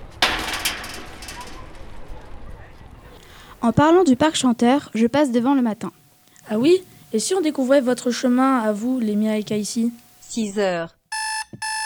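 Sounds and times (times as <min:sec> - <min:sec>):
door banging shut with a wooden thud: 0:00.0 - 0:02.2
low rumble: 0:00.0 - 0:10.0
speech: 0:03.6 - 0:11.0.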